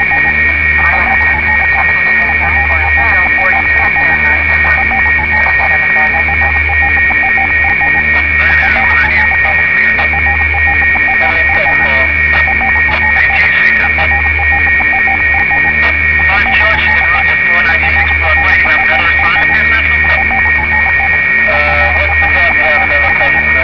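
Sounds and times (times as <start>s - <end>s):
signal gear: 0.0s - 23.6s.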